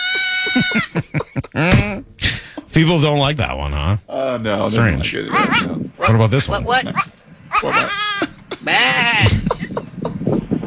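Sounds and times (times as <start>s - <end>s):
goat bleating: 0.0s - 0.9s, 5.3s - 5.7s, 6.6s - 9.3s
laughter: 0.0s - 2.8s, 4.8s - 10.6s
speech: 2.8s - 9.4s.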